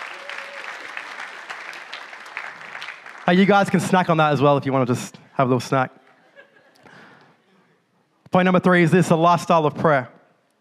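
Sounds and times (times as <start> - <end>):
room full of people applauding: 0.0 - 3.8
speech: 3.3 - 6.0, 8.4 - 10.2.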